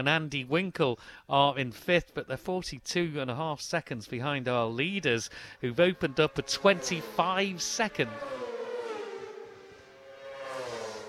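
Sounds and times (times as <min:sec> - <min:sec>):
speech: 0:00.0 - 0:08.4
racing motorbikes in a race passing: 0:05.6 - 0:11.0.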